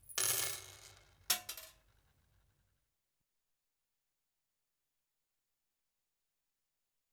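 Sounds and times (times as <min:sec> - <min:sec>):
small nails dropped on bench: 0:00.0 - 0:01.8.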